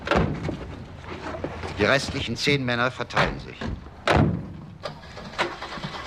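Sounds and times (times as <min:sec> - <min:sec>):
speech: 0:01.8 - 0:03.9
three-ton truck and car engines starting at night: 0:03.2 - 0:06.0.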